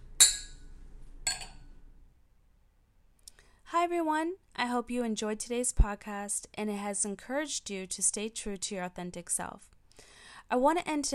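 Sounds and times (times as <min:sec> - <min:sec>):
wine glasses clinking in a toast: 0:00.2 - 0:00.6, 0:01.3 - 0:01.6
speech: 0:03.8 - 0:09.8, 0:10.5 - 0:11.1.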